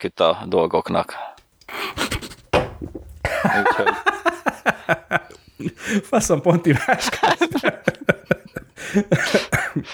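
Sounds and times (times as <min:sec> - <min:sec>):
speech: 0:00.0 - 0:01.3, 0:02.8 - 0:04.2, 0:04.9 - 0:08.0, 0:08.8 - 0:09.9
laughter: 0:00.5 - 0:09.9
fit of coughing: 0:01.7 - 0:06.0.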